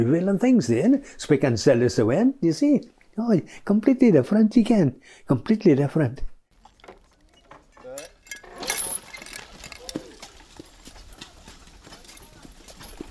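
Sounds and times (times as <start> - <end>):
speech: 0.0 - 6.3
horse hooves clip-clopping pulling a cart: 6.5 - 13.0
cart rattling: 6.6 - 13.0.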